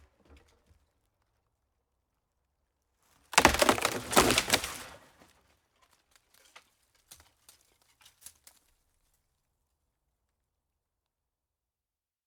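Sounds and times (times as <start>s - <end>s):
dead tree being taken down: 3.3s - 5.3s.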